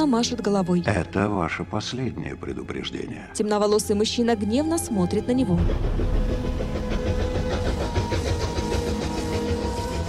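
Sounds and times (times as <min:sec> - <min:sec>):
speech: 0:00.0 - 0:06.6
train travelling: 0:04.4 - 0:10.0.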